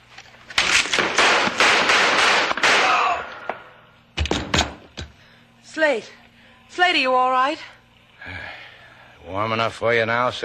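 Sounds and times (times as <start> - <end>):
gunshots: 0.6 - 3.5
speech: 5.8 - 7.8, 9.3 - 10.4.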